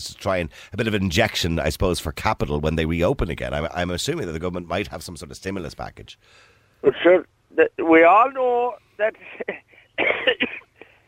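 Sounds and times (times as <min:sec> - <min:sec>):
speech: 0:00.0 - 0:10.6
faint hum: 0:02.8 - 0:11.0
person coughing harshly: 0:09.3 - 0:11.0.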